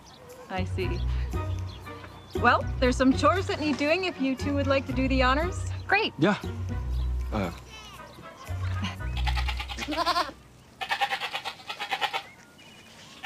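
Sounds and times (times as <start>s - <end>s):
speech: 0.5s - 1.4s, 2.4s - 7.6s, 9.9s - 10.3s
goats bleating: 7.6s - 12.4s.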